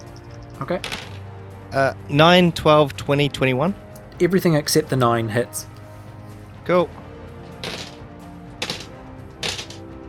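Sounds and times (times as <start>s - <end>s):
dice rattling against a hard surface: 0.1s - 1.2s, 7.6s - 8.0s, 8.6s - 9.8s
speech: 0.6s - 1.1s, 1.7s - 5.7s, 6.7s - 7.0s.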